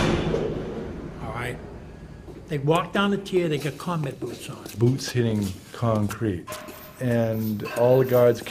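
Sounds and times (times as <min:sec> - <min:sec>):
heavy electrically operated steel prison door slamming shut: 0:00.0 - 0:01.3
speech: 0:02.5 - 0:08.4.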